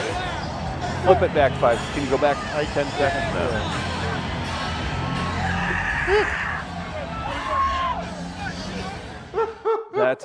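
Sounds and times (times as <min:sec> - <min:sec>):
dense steady crowd din with chatter: 0:00.0 - 0:10.2
speech: 0:01.0 - 0:04.0, 0:06.1 - 0:06.4
person screaming in sharp rising bursts: 0:05.3 - 0:06.6.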